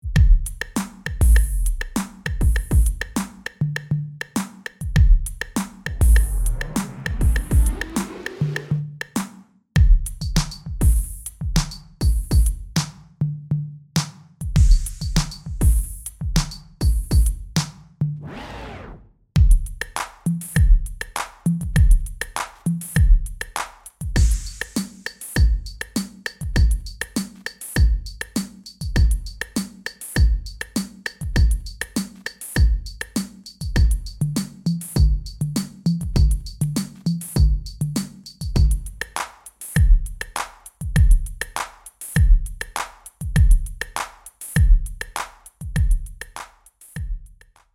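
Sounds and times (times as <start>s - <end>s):
drum machine beat from vinyl: 0.0s - 13.1s, 14.0s - 17.8s, 19.4s - 47.6s
50 Hz hum: 5.9s - 8.2s.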